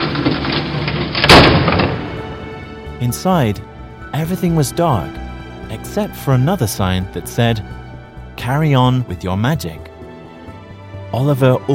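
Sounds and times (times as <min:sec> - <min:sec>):
big door in a tree trunk opening: 0:00.0 - 0:08.3
speech: 0:03.0 - 0:07.8, 0:08.4 - 0:09.9, 0:11.1 - 0:11.7.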